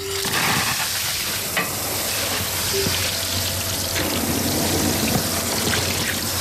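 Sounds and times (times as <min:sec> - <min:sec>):
water spraying from a hose or watering wand onto panicle hydrangeas at a garden centre: 0:00.0 - 0:06.3.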